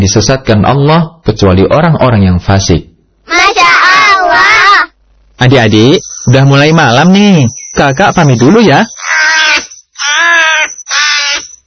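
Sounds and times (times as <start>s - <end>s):
speech: 0.0s - 4.5s, 5.4s - 9.0s
crow cawing: 8.9s - 11.6s.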